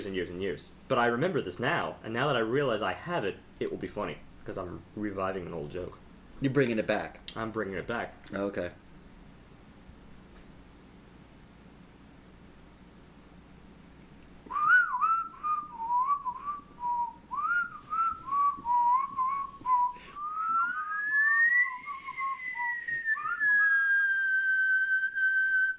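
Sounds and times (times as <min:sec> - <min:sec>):
speech: 0:00.0 - 0:08.8
person whistling loudly: 0:14.5 - 0:25.7.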